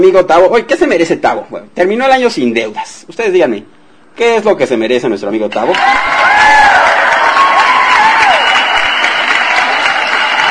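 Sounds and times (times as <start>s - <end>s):
speech: 0.0s - 6.5s
cheers and whistles: 5.7s - 10.4s
loud sustained audience applause: 5.7s - 10.4s.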